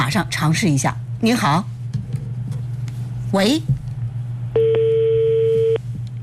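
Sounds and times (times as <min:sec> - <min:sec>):
low hum: 0:00.0 - 0:06.2
speech: 0:00.1 - 0:01.7, 0:03.3 - 0:03.8
steady electronic telephone line tone: 0:04.6 - 0:05.8.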